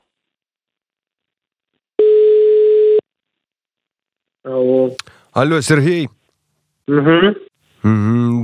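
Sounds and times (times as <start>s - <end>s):
ringback tone of a telephone call being dialled out: 2.0s - 3.0s
speech: 5.4s - 6.2s, 6.9s - 8.4s.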